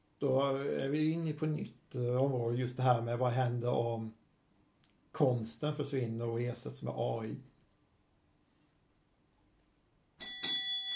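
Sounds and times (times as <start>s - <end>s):
speech: 0.2s - 4.2s, 5.2s - 7.5s
doorbell chiming ding-dong: 10.2s - 10.9s.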